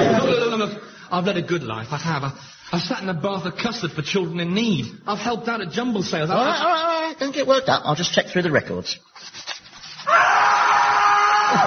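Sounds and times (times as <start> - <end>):
speech: 0.7 - 9.5, 11.5 - 11.6
estate agents screaming as they are tormented: 10.1 - 11.6.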